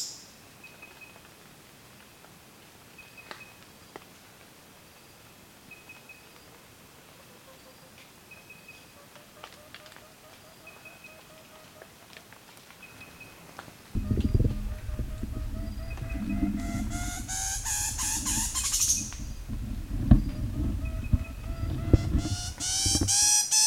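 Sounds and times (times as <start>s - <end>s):
Angolan dwarf galago G. kumbirensis crescendo twitter vocalisation: 13.9s - 23.5s.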